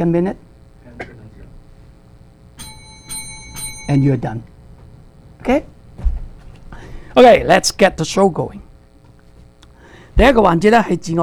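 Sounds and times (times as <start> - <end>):
speech: 0.0 - 1.1, 3.9 - 4.5, 5.4 - 5.7, 7.2 - 8.6, 10.2 - 11.2
countdown timer bell dinging: 2.6 - 4.6.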